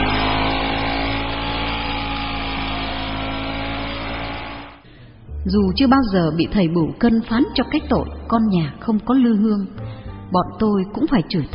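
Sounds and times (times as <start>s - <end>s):
moped revving and riding away: 0.0s - 4.9s
speech: 5.4s - 11.5s.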